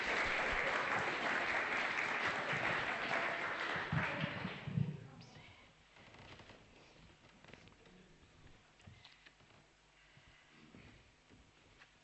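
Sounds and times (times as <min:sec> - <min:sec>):
audience applauding: 0:00.0 - 0:04.7.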